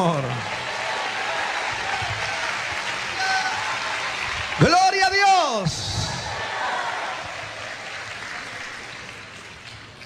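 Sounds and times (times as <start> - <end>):
congregation applauding during a church worship service: 0.0 - 10.0.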